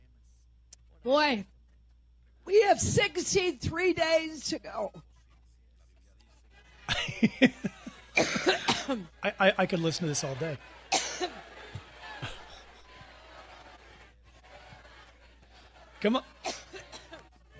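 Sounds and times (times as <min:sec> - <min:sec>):
speech: 0:01.0 - 0:01.5, 0:02.5 - 0:05.1, 0:07.2 - 0:11.3, 0:16.0 - 0:16.3
laughter: 0:06.6 - 0:17.5
person in a prolonged hacking coughing fit: 0:06.9 - 0:09.0, 0:10.9 - 0:11.3, 0:12.2 - 0:12.6.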